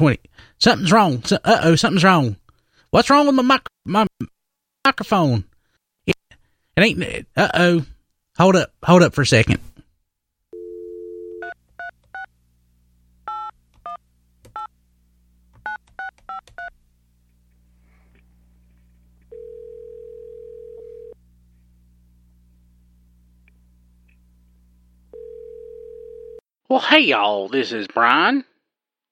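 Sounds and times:
speech: 0.0s - 5.5s, 6.8s - 9.7s, 26.7s - 28.5s
telephone dial tone: 10.6s - 12.3s, 19.3s - 21.2s, 25.1s - 26.4s.

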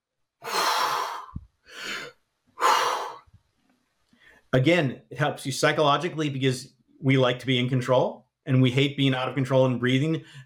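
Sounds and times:
person imitating gasping breaths while swimming: 0.4s - 3.3s
speech: 4.5s - 10.4s.

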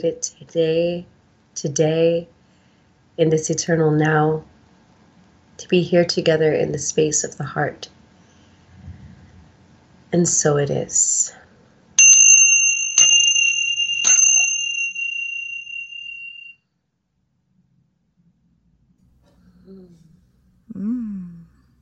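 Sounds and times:
speech: 0.0s - 2.4s, 3.2s - 4.5s, 5.6s - 8.0s, 10.1s - 11.4s
bright bell ringing: 12.0s - 16.6s.

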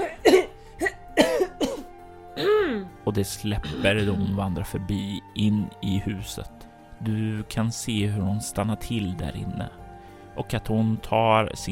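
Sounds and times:
person coughing from thick smoke: 0.0s - 2.9s, 3.6s - 4.4s
speech: 3.2s - 9.8s, 10.4s - 11.6s.

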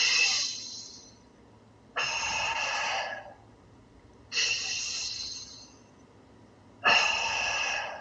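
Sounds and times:
deep breaths in through the nose and out through the mouth: 0.0s - 1.2s, 2.0s - 3.4s, 4.3s - 5.8s, 6.8s - 8.0s.

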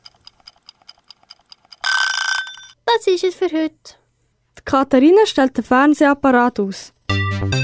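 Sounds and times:
clock ticking: 0.0s - 2.7s
alarm clock ringing: 1.8s - 2.8s
speech: 2.9s - 4.0s, 4.7s - 7.5s.

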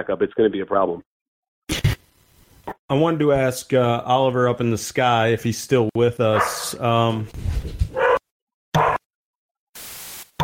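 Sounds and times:
speech: 0.0s - 1.1s, 2.9s - 7.9s
dogs barking in the house: 6.4s - 6.7s, 7.9s - 8.2s, 8.8s - 9.0s.

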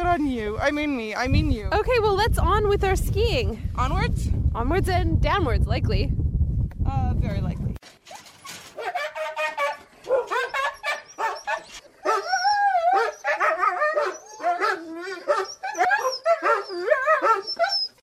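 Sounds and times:
speech: 0.2s - 6.2s, 6.9s - 7.7s
pack of sled dogs barking, yelping and howling: 8.8s - 18.0s.

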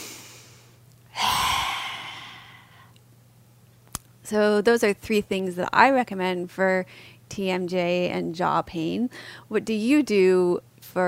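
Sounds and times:
yoga lion's breath forceful exhale with tongue out: 0.0s - 2.9s
speech: 4.3s - 11.0s.

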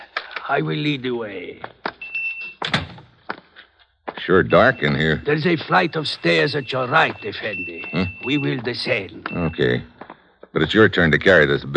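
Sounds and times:
speech: 0.5s - 1.9s, 4.2s - 9.9s, 10.5s - 11.7s
door swinging shut with a solid thud: 2.6s - 3.1s.

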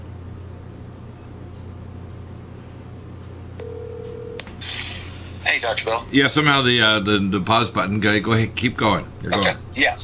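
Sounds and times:
constant low hum and hiss of telephone line noise: 0.0s - 10.0s
telephone ringing on the line while reconnecting a dropped call: 3.6s - 4.4s
speech: 5.6s - 10.0s.

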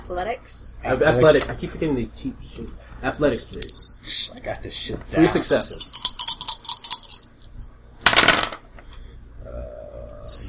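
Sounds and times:
faint low hum: 0.0s - 10.4s
speech: 0.1s - 6.0s
dice rolled in a tabletop game: 5.4s - 8.6s.

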